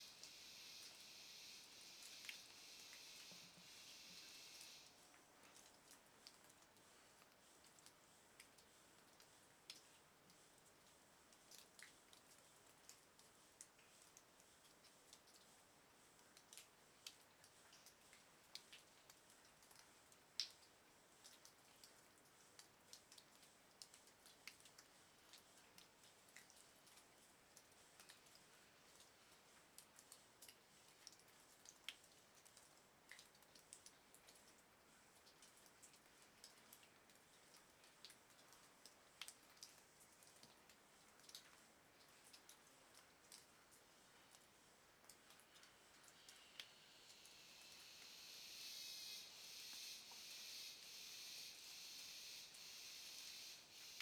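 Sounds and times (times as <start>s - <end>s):
cicadas oscillating: 0.0s - 4.9s, 47.0s - 53.9s
heavy water dripping inside a cave: 0.0s - 53.9s.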